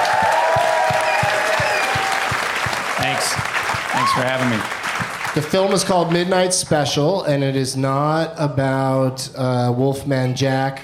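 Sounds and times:
large audience clapping: 0:00.0 - 0:06.3
speech: 0:04.2 - 0:10.8.

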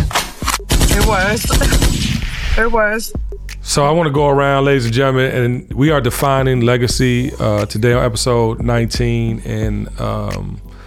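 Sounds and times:
loud gunshot sound effect: 0:00.0 - 0:02.8
speech: 0:01.0 - 0:10.7.

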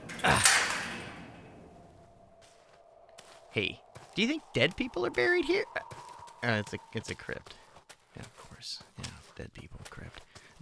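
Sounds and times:
old rusty gate creaking open: 0:00.0 - 0:01.9
speech: 0:03.6 - 0:07.6, 0:08.2 - 0:10.3.

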